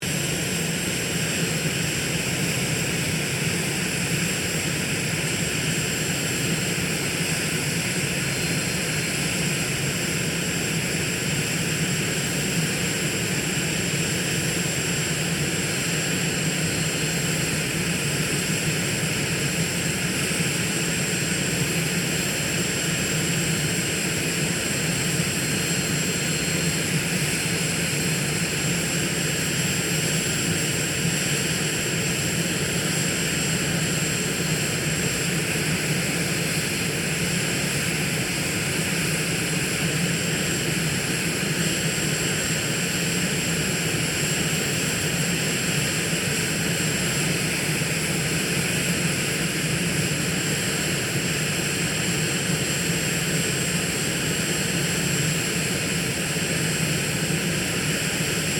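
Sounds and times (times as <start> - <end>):
Cessna A-37B Dragonfly jet aircraft idling: 0.0 - 58.5.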